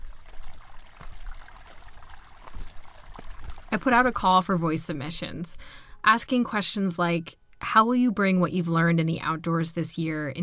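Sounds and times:
rushing water: 0.0s - 4.4s
speech: 3.8s - 10.4s.

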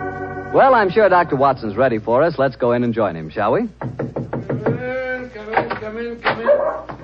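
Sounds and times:
speech: 0.6s - 4.1s
dogs barking: 6.4s - 7.0s.

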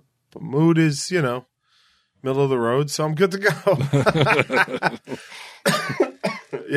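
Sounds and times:
speech: 0.4s - 1.5s, 2.2s - 6.0s
laughter: 3.5s - 6.7s
breathy exhale: 5.2s - 5.7s
person with lingering phlegm coughing harshly: 5.3s - 6.7s.

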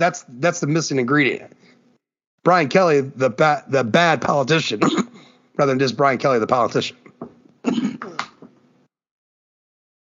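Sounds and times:
speech: 0.0s - 1.7s, 2.4s - 7.8s
coughing: 4.7s - 5.3s, 7.6s - 8.4s
throat clearing: 4.8s - 5.3s, 7.6s - 8.4s.

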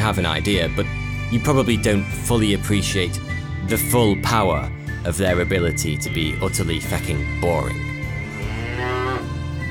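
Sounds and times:
speech: 0.0s - 7.9s
cow mooing: 8.0s - 9.6s.

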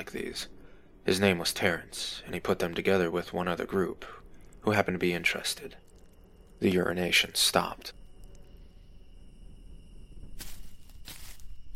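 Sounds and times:
speech: 0.0s - 5.8s, 6.6s - 8.0s
low rumble: 0.0s - 11.7s
high insect-like drone: 3.6s - 11.7s
footsteps crunching across a campsite: 10.3s - 11.7s.

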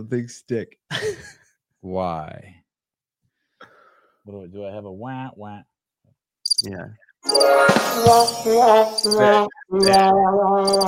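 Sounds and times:
speech: 0.0s - 2.6s, 4.2s - 5.7s, 6.6s - 10.8s
cricket chirping sound effect: 6.5s - 6.7s, 7.3s - 7.5s, 9.0s - 9.2s, 10.6s - 10.8s.

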